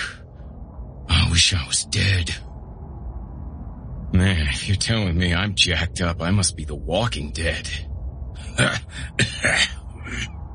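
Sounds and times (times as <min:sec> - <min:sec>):
speech: 0:01.4 - 0:02.5, 0:04.2 - 0:10.4
man coughing in rough raspy bursts: 0:08.5 - 0:10.3.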